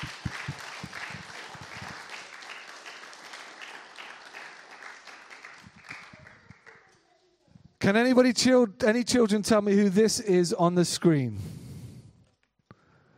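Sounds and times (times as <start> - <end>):
crowd applauding two participants after press-ups: 0.0 - 6.9
speech: 7.9 - 11.5.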